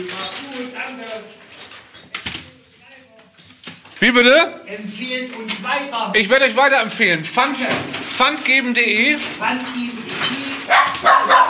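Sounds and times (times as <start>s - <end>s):
speech: 4.0s - 10.3s
neighbour's dog barking: 10.7s - 11.4s.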